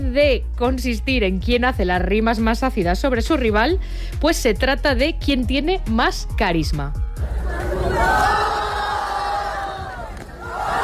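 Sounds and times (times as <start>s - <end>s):
speech: 0.2s - 8.3s
crowd cheering and booing at a street battle: 7.2s - 10.8s.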